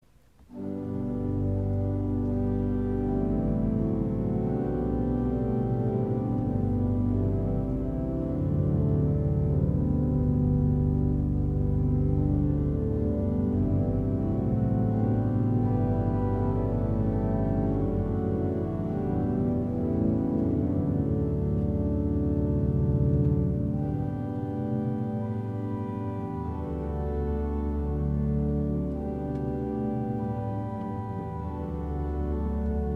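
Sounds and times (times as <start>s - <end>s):
pipe organ diapason stop: 0.3s - 32.9s.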